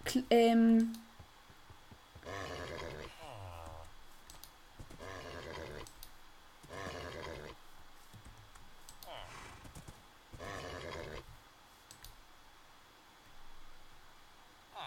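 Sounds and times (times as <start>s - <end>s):
steady hum: 0.0s - 14.8s
speech: 0.1s - 1.0s
horse neighing in a video game sound effect: 2.2s - 3.8s, 5.0s - 5.9s, 6.6s - 7.6s, 9.0s - 9.7s, 10.4s - 11.2s
horse snorting in a video game sound effect: 2.2s - 3.8s, 4.8s - 5.9s, 6.6s - 7.6s, 9.1s - 11.3s.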